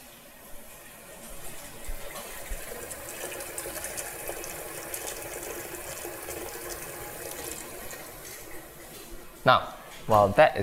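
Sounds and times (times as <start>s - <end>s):
tap water running into a big pot: 1.1s - 9.0s
speech: 9.5s - 10.6s.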